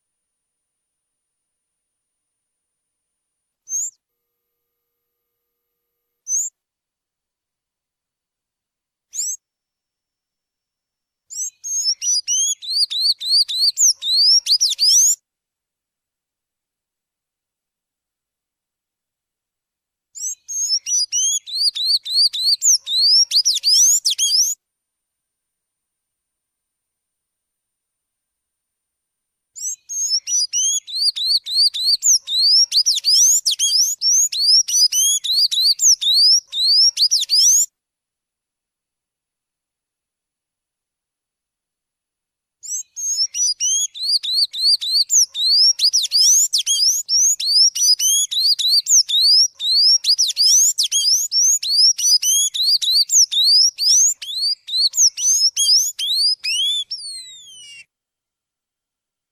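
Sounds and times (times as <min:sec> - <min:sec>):
blue-grey tanager singing: 0:03.7 - 0:04.0, 0:11.3 - 0:15.2, 0:20.2 - 0:24.6, 0:29.6 - 0:37.7, 0:42.7 - 0:57.8.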